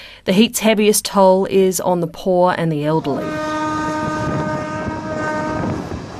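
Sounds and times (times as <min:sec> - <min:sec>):
speech: 0:00.2 - 0:03.5
train horn blast: 0:03.2 - 0:06.1.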